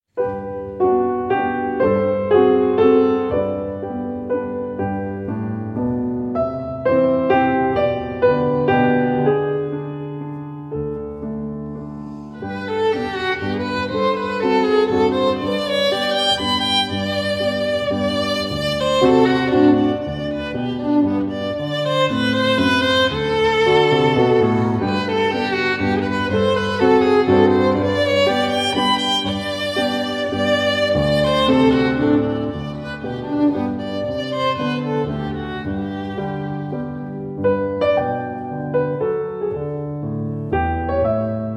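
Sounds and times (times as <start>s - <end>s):
andante for violin and piano: 0.2s - 41.5s.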